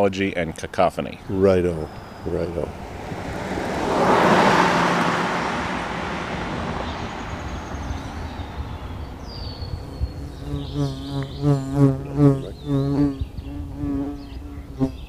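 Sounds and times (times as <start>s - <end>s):
speech: 0.0s - 3.2s
bird chirps: 1.2s - 2.9s, 6.6s - 15.0s
bee buzzing: 1.2s - 15.0s.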